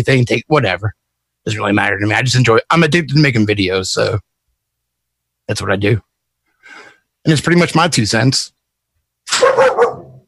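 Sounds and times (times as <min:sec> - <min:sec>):
speech: 0:00.0 - 0:04.3, 0:05.5 - 0:06.1, 0:06.7 - 0:08.6
dogs barking: 0:09.3 - 0:10.2.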